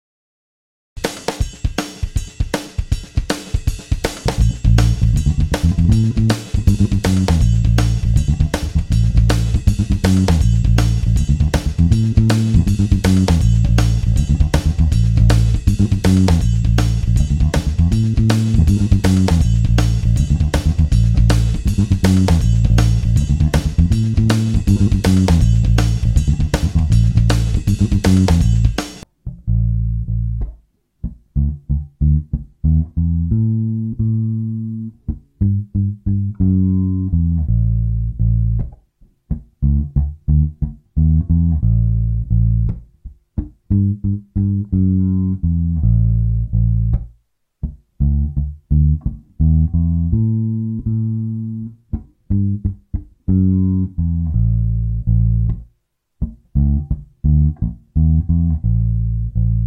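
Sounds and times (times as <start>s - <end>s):
fast shuffle bass line in A: 1.0s - 59.6s.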